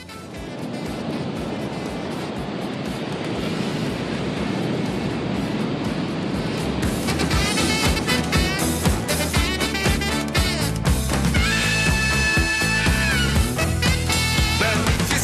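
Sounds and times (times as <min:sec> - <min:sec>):
sea waves and continuous surf roar: 0:00.0 - 0:15.2.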